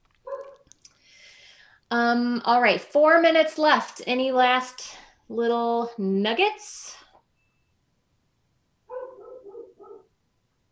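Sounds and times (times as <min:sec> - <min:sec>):
dogs barking in a home: 0:00.2 - 0:00.7, 0:08.9 - 0:10.1
speech: 0:01.9 - 0:07.0.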